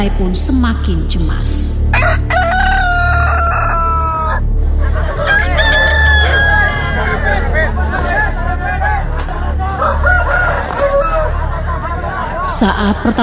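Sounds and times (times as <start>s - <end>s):
speech: 0.0s - 2.5s, 12.6s - 13.2s
birds clucking in a cockfight arena: 1.9s - 13.2s
roosters crowing in a cockfight arena: 1.9s - 13.2s
laughter: 2.7s - 13.2s
dense murmur of crowd chatter and commotion at a cockfight: 5.0s - 13.2s.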